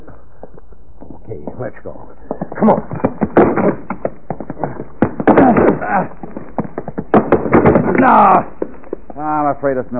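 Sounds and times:
straining voices of people forcing a door: 0:00.0 - 0:09.8
speech: 0:01.3 - 0:03.8, 0:08.0 - 0:08.5, 0:09.2 - 0:09.9
heavy thumps and knocks on a locked tool shed door: 0:02.3 - 0:08.7.

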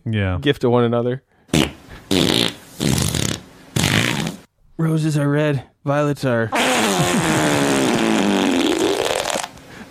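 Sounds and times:
speech: 0:00.1 - 0:01.3, 0:02.1 - 0:02.5, 0:04.8 - 0:07.5
loud buzzy farts: 0:01.5 - 0:04.5, 0:06.6 - 0:09.6.

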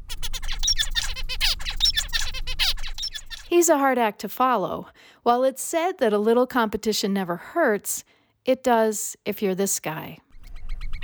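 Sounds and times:
male songbird singing: 0:00.0 - 0:03.6
speech: 0:03.5 - 0:10.2.

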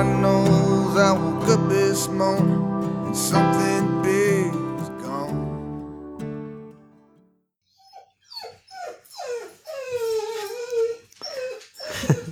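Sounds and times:
speech: 0:00.0 - 0:01.4, 0:02.0 - 0:04.6
brief low tonal note: 0:00.0 - 0:06.2
dog whimpering and whining in a room: 0:07.7 - 0:12.3.

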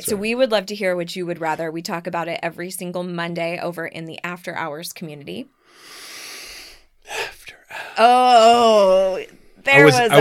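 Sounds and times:
speech: 0:00.0 - 0:06.0, 0:08.0 - 0:10.1
sharp voiced inhale from a person: 0:05.6 - 0:08.0
short breathy vocal sounds: 0:05.7 - 0:08.8.

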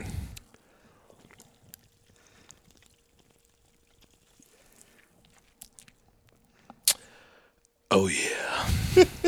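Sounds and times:
sharp lip smack: 0:00.0 - 0:07.2
sipping cold Pepsi from a can: 0:00.0 - 0:07.7
soft wet mouth clicks: 0:00.0 - 0:07.8
speech: 0:08.0 - 0:09.2.

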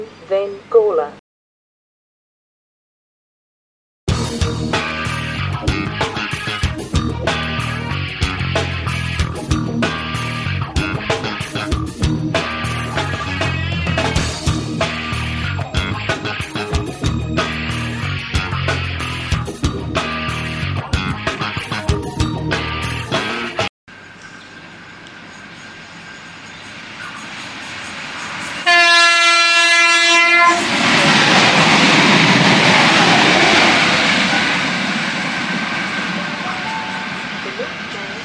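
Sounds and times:
speech: 0:00.0 - 0:01.2
train passing through Dudley Park station in Adelaide without stopping: 0:04.1 - 0:23.7, 0:25.2 - 0:38.2
train horn blast: 0:28.6 - 0:30.7.

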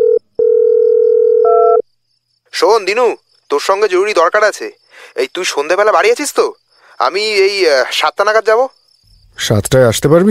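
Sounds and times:
telephone ringback tone after dialing a mobile number: 0:00.0 - 0:01.8
speech: 0:02.6 - 0:08.8, 0:09.4 - 0:10.2.

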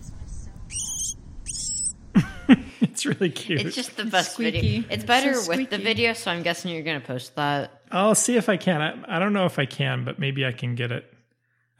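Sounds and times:
baby bird giving thin high-pitched calls: 0:00.7 - 0:02.0
laughter: 0:02.2 - 0:06.4, 0:08.0 - 0:10.9
speech: 0:02.2 - 0:11.2.

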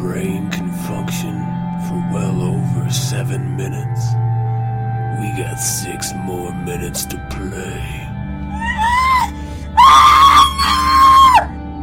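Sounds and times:
speech: 0:00.0 - 0:08.6
person screaming: 0:08.5 - 0:11.6.

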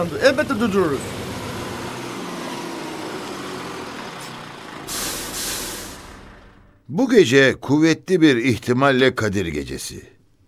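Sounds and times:
speech: 0:00.0 - 0:01.2, 0:06.9 - 0:10.2
bus engine rumbling: 0:00.0 - 0:07.0
bus air brakes hissing: 0:04.2 - 0:06.3.

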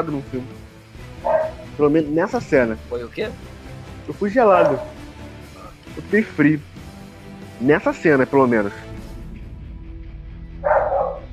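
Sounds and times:
speech: 0:00.0 - 0:05.0, 0:06.0 - 0:06.8, 0:07.6 - 0:08.9
small dog barking: 0:01.2 - 0:01.7, 0:04.6 - 0:05.0, 0:10.6 - 0:11.3.

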